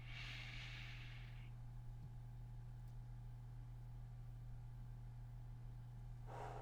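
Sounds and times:
slow deep breathing during a guided breathing exercise: 0.0s - 1.4s, 6.2s - 6.5s
steady low hum: 0.0s - 6.5s.

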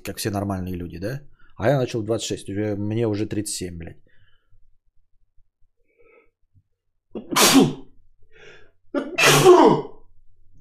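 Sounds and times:
speech: 0.0s - 4.0s
person sneezing: 7.2s - 7.9s, 9.0s - 10.0s.

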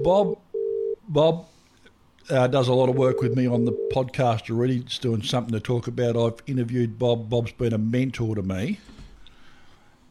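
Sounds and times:
speech: 0.0s - 0.4s, 1.1s - 1.5s, 2.2s - 9.0s
electronic phone ringback tone in a double pulse: 0.0s - 1.0s, 3.1s - 4.0s.

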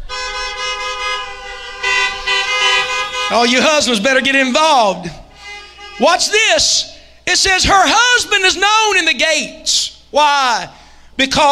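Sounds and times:
car horns honking: 0.0s - 7.7s
speech: 3.3s - 5.2s, 6.0s - 11.5s.

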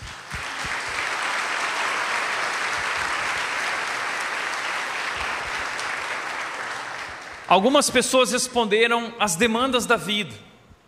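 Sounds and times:
audience applause: 0.0s - 7.7s
speech: 7.5s - 10.5s.

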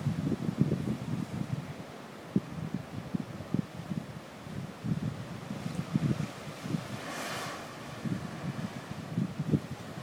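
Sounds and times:
steady hiss of surf: 0.0s - 10.0s
wind at a beach buffeting the microphone: 0.0s - 10.0s
wave breaking: 5.4s - 10.0s.

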